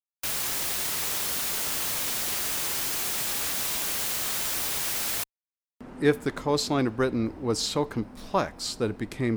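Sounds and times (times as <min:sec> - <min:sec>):
white noise static: 0:00.0 - 0:05.2
speech: 0:06.0 - 0:09.3.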